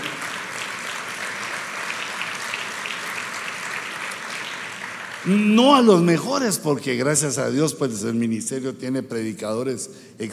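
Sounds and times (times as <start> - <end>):
congregation applauding: 0.0 - 6.5
speech: 5.2 - 10.3.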